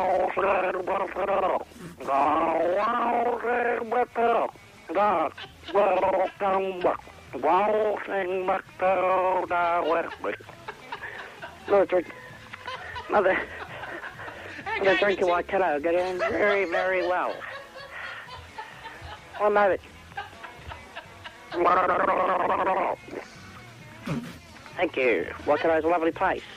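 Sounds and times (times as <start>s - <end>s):
speech: 0.0s - 10.6s, 11.7s - 12.2s, 13.1s - 13.7s, 14.8s - 17.5s, 19.4s - 19.9s, 21.5s - 23.3s, 24.1s - 26.5s
laughter: 4.9s - 7.1s, 9.0s - 23.3s
person gargling a song: 21.7s - 23.2s, 24.0s - 24.4s.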